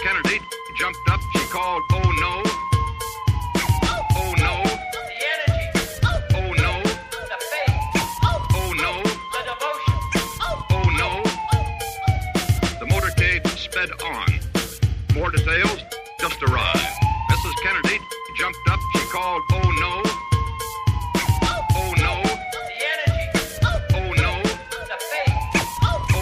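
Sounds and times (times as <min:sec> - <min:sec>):
ambulance siren wailing: 0:00.0 - 0:26.2
speech: 0:00.9 - 0:02.1.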